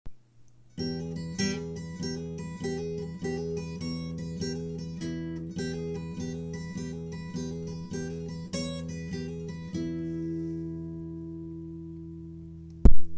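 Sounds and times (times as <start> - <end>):
guitar lick on high E string: 0.7 - 12.4.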